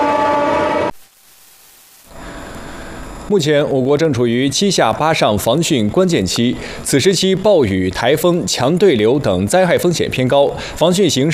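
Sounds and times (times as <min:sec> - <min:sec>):
train horn blast at night: 0:00.0 - 0:01.0
speech: 0:03.3 - 0:11.3.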